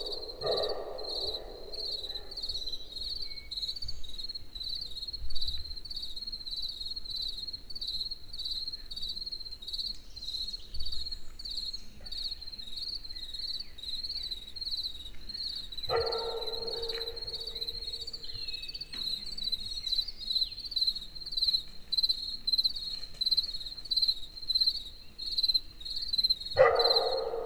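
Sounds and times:
dog barking: 0.0s - 2.9s, 15.9s - 18.2s, 26.6s - 27.4s
crickets chirping in a forest in the evening: 0.0s - 5.1s, 14.2s - 18.8s, 19.5s - 27.4s.

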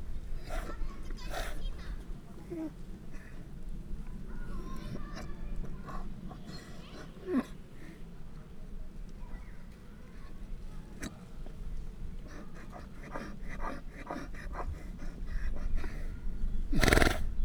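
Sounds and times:
donkey snorting at a zoo: 0.2s - 8.1s, 10.2s - 17.3s
whimpering animal at a zoo: 0.4s - 3.5s, 4.3s - 8.0s, 12.1s - 17.3s.

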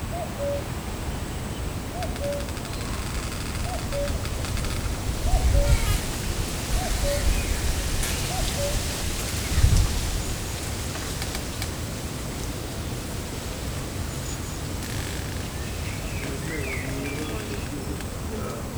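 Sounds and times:
cuckoo calling: 0.1s - 0.8s, 1.9s - 10.4s, 14.1s - 18.7s
creaking tree branch: 1.7s - 18.7s.

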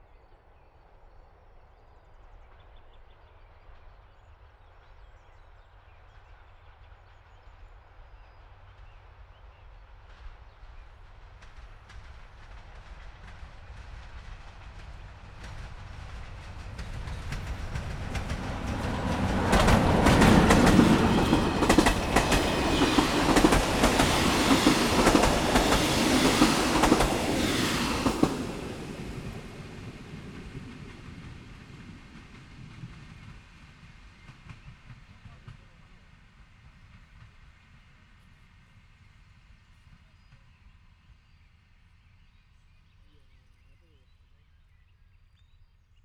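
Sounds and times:
train heading to Vízvár passing a level crossing: 13.7s - 33.3s.

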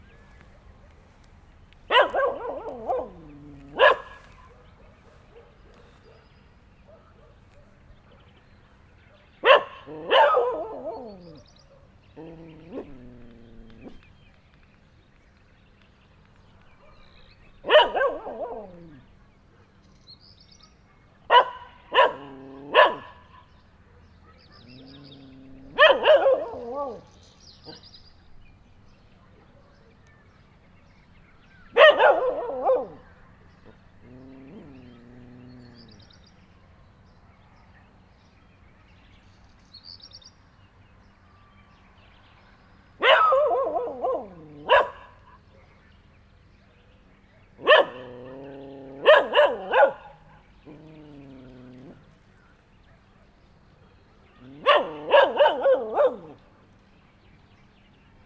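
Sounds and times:
dog barking at a cyclist in Hortobagy: 1.9s - 8.2s, 9.2s - 14.0s, 16.8s - 19.0s, 21.3s - 25.0s, 25.6s - 27.8s, 31.7s - 35.1s, 43.0s - 45.6s, 47.6s - 51.1s, 54.4s - 56.4s.

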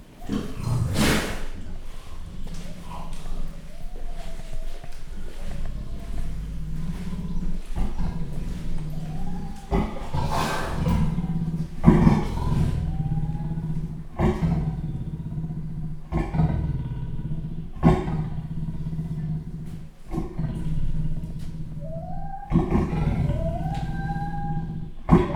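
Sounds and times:
leopard roaring in Jaszbereny zoo: 0.0s - 25.3s
white-handed gibbon calling in Jaszbereny zoo: 1.8s - 15.0s, 21.8s - 25.3s.

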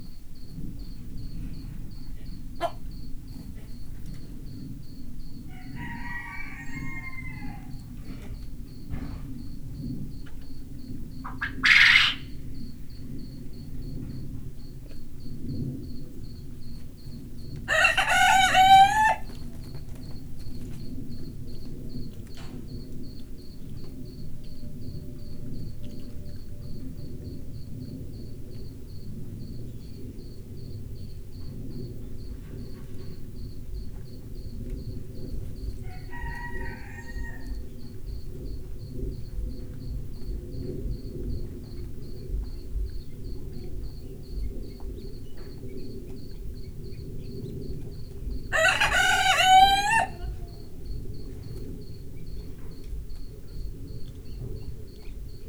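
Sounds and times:
cricket chirping in a farmyard: 0.0s - 55.4s
quail calling in a farmyard: 5.5s - 7.8s, 11.2s - 12.4s, 17.7s - 19.6s, 48.5s - 50.8s
rooster crowing in a farmyard: 5.5s - 8.2s, 17.7s - 19.6s, 35.8s - 37.8s, 48.5s - 50.8s.

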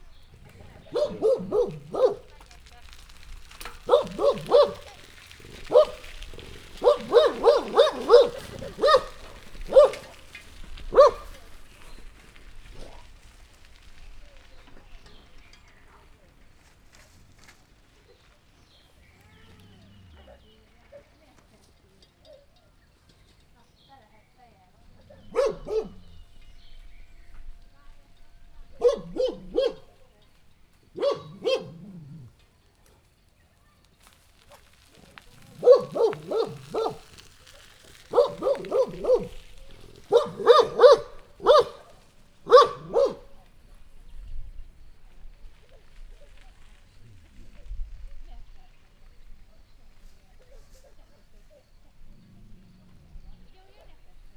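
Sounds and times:
city bicycle: 0.0s - 31.1s, 32.3s - 54.3s
dog: 0.8s - 2.5s, 3.8s - 10.2s, 10.9s - 11.5s, 25.0s - 26.2s, 28.8s - 30.0s, 31.0s - 33.1s, 35.5s - 37.3s, 37.9s - 43.4s.

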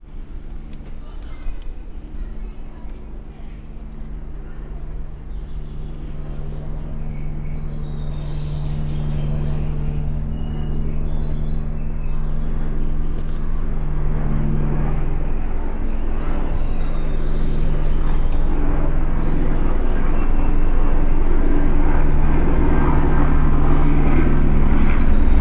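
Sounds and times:
airplane: 0.0s - 25.3s
Goeldi's tamarin monkey calling: 2.6s - 4.2s, 17.7s - 20.3s.

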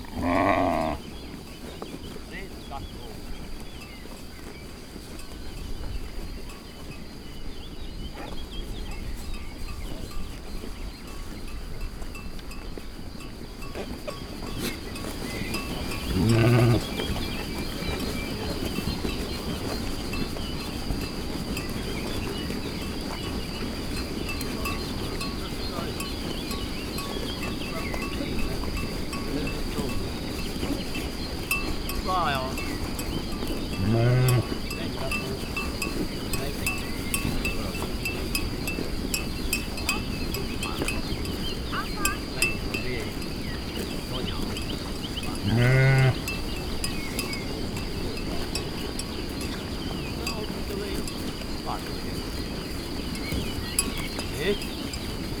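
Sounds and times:
grazing sheep bleating in the distance on a farm: 0.0s - 1.0s, 15.9s - 17.0s, 33.7s - 34.6s, 45.4s - 46.3s
shepherd on a farm: 0.0s - 7.1s, 8.0s - 55.3s.

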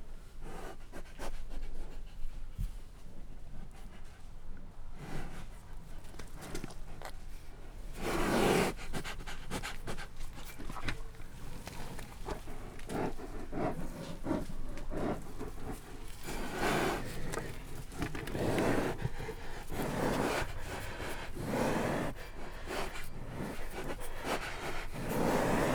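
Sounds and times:
captive brown bears chewing while eating at a zoo in Hungary: 5.5s - 25.7s
brown bear rushing breath or snort: 8.0s - 25.7s.

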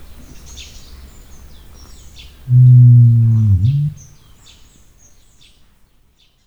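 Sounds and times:
rhea: 2.5s - 4.1s.

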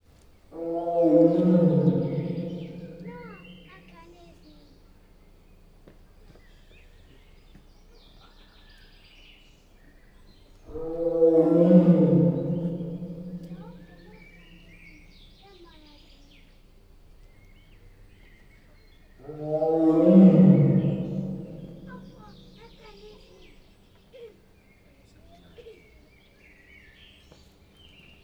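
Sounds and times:
Siberian tiger in a house, heard from farther away: 0.5s - 4.4s, 10.5s - 15.1s, 18.1s - 23.4s.

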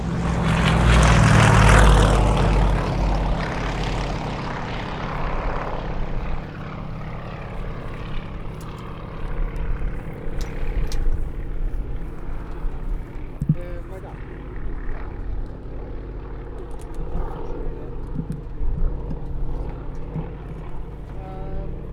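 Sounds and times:
single-engine plane at Budaörs airfield: 0.0s - 21.9s.

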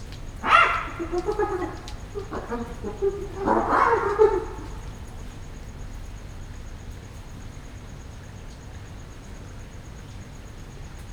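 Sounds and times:
short spotted hyena call at night in a zoo: 0.4s - 5.2s.

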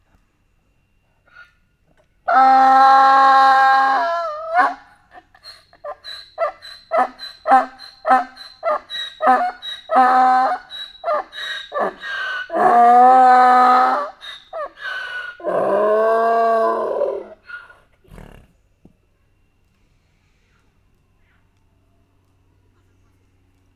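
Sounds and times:
Hungarian parlagi donkey: 2.3s - 18.6s.

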